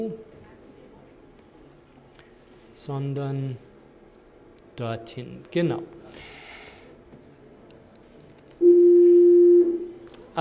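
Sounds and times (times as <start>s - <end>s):
speech: 0.0s - 0.3s, 2.8s - 3.7s, 4.8s - 6.3s
pure steady 349 Hz sine tone: 8.6s - 9.9s.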